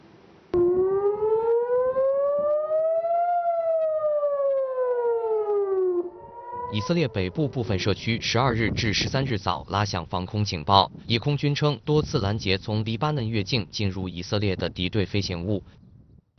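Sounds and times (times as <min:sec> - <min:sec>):
loud air raid warning siren wailing: 0:00.6 - 0:08.8
person talking: 0:06.7 - 0:15.6.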